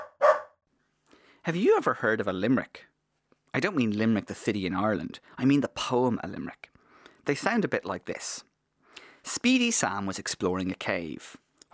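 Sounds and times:
dog barking: 0.0 - 0.6
speech: 1.5 - 2.9, 3.5 - 8.5, 9.2 - 11.7.

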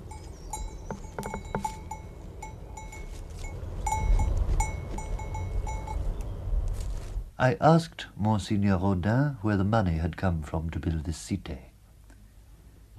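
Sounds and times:
bells clinking on grazing sheep: 0.0 - 6.2
low outdoor rumble: 0.0 - 12.9
speech: 7.4 - 11.7.

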